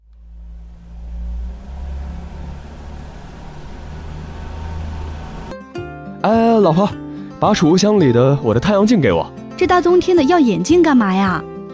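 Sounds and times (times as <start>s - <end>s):
car engine idling to warm up: 0.0s - 5.5s
speech: 6.2s - 11.5s.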